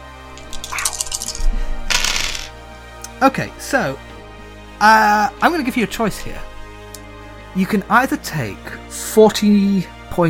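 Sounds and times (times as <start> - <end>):
dice rolling on a hard table: 0.4 - 2.5
speech: 3.2 - 4.1, 4.8 - 6.5, 7.6 - 10.2.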